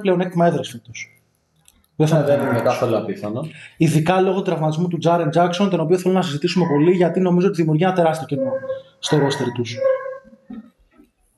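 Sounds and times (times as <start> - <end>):
speech: 0.0 - 1.2, 2.0 - 10.0
dog barking outside: 2.2 - 3.0, 6.2 - 10.5.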